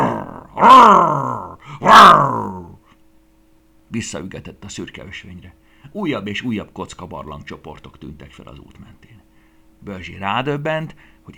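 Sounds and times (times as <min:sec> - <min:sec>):
dog snarling and growling: 0:00.0 - 0:02.8
speech: 0:00.6 - 0:02.6, 0:03.9 - 0:09.2, 0:09.8 - 0:11.3.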